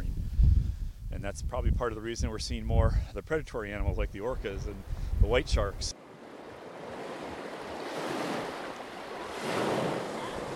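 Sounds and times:
wind buffeting: 0.0s - 10.5s
speech: 1.2s - 6.0s
ocean waves washing against the shore below a coastal overlook: 5.8s - 10.5s.

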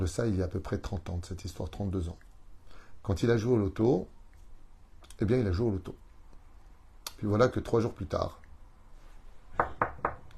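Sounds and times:
speech: 0.0s - 2.3s, 3.0s - 4.2s, 5.2s - 6.0s, 7.2s - 8.4s
knocking on a door: 9.6s - 10.3s.

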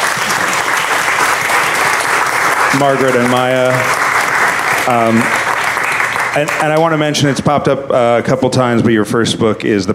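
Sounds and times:
audience applause at the close of a talk: 0.0s - 7.4s
speech: 2.8s - 4.0s, 4.8s - 5.4s, 6.3s - 9.9s.

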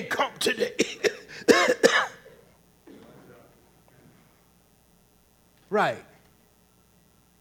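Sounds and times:
speech: 0.0s - 1.0s, 5.7s - 6.1s
person coughing and clearing throat: 0.5s - 3.3s.

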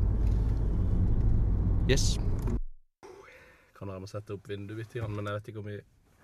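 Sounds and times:
car engine and tyre drone heard from inside the cabin: 0.0s - 2.6s
speech: 1.9s - 2.6s, 3.8s - 6.0s.

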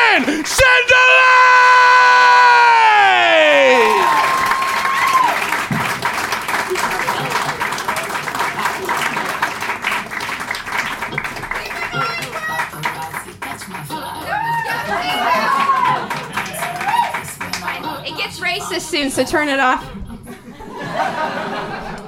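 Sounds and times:
large audience at a live show applauding: 0.0s - 1.2s, 2.3s - 18.0s
speech: 0.2s - 1.0s, 19.2s - 20.0s
laughter: 6.3s - 22.0s.

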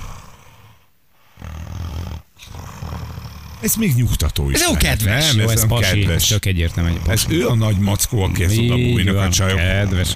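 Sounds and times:
man snoring: 0.0s - 3.8s, 5.2s - 10.1s
speech: 3.6s - 10.1s.

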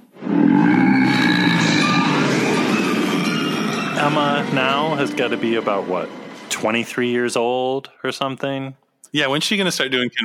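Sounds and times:
deep roaring sea-monster effect from a computer-processed recording: 0.0s - 6.6s
speech: 4.0s - 10.2s.

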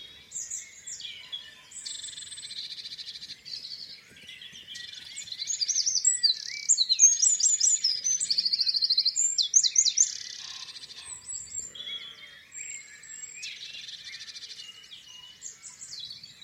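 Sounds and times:
dawn chorus of many birds in open countryside: 0.0s - 16.4s
songbird singing: 0.0s - 16.4s.

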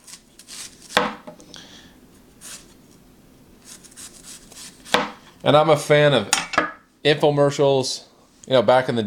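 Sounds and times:
knife chopping a crisp apple: 0.0s - 1.4s, 3.7s - 5.3s
speech: 5.4s - 6.4s, 7.0s - 9.0s.

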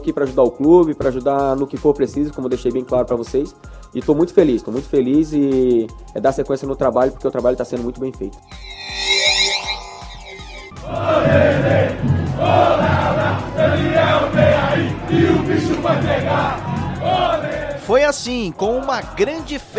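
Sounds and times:
speech: 0.0s - 9.1s, 10.9s - 19.7s
hundreds of football fans cheering and chanting at an airport: 10.8s - 17.9s.

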